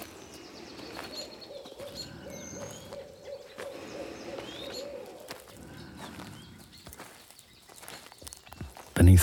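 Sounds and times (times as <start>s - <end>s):
birds chirping: 0.0s - 9.2s
owl hooting among pines after overnight rain: 1.0s - 5.4s
speech: 9.0s - 9.2s.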